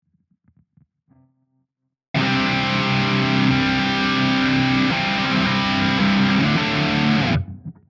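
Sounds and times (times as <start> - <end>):
guitar: 2.2 - 7.8.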